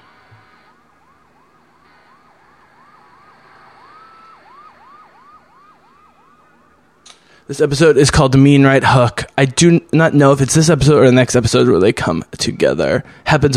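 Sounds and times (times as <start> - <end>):
emergency siren yelping: 0.0 - 7.0
speech: 7.5 - 13.5.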